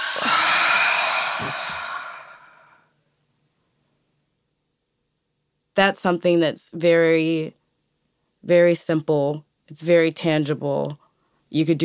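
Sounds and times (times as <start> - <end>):
deep breath in and out during a relaxation exercise: 0.0 - 2.9
speech: 5.8 - 7.6, 8.4 - 11.8.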